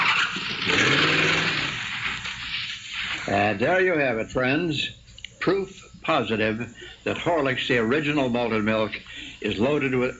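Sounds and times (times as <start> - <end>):
car tires screeching as it speeds off: 0.0 - 1.8
car engine revving as it speeds off: 0.7 - 1.8
speech: 3.3 - 10.1.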